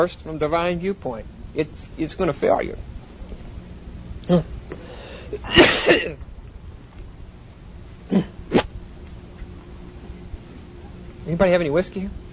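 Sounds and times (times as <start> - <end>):
speech: 0.0 - 2.9, 4.3 - 6.3, 11.3 - 12.2
man coughing: 5.3 - 6.2, 8.1 - 8.6
man clearing his throat: 5.4 - 6.2, 8.1 - 8.6.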